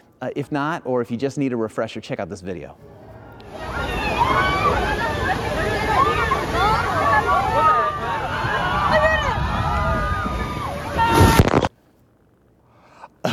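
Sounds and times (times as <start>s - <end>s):
speech: 0.2s - 3.0s
dense crowd chattering and shouting at an amusement park water ride: 2.8s - 11.6s
rushing, splashing water at an amusement park water ride: 3.5s - 11.5s.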